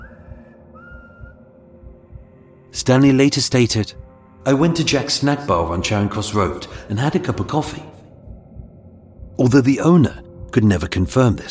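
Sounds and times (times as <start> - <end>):
person whistling up to a window: 0.0 - 2.1
low thumping pulse: 0.0 - 11.5
speech: 2.7 - 8.0, 9.4 - 11.5.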